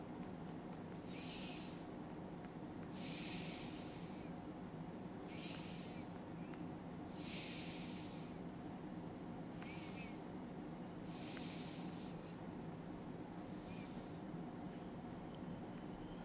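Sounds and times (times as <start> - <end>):
low steady hum: 0.0 - 16.2
slow soft airy breathing in and out: 1.0 - 2.0, 2.9 - 4.4, 5.2 - 6.2, 7.1 - 8.5, 9.6 - 10.2, 11.0 - 12.6.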